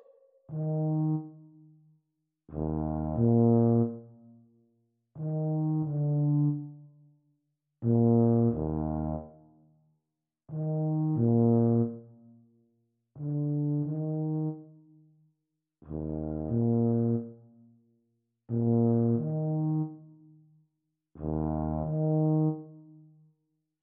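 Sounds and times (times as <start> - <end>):
Eb tuba duet: 0.5 - 1.5, 2.5 - 4.3, 5.2 - 6.8, 7.9 - 9.5, 10.5 - 12.3, 13.2 - 14.7, 15.9 - 17.5, 18.5 - 20.2, 21.2 - 23.0.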